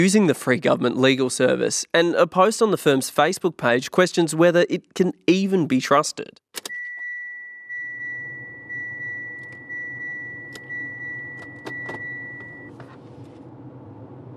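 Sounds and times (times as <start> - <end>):
speech: 0.0 - 6.7
thin high beep: 6.7 - 12.7
steady low road drone in a car cabin on a dry straight inland highway: 7.0 - 14.3.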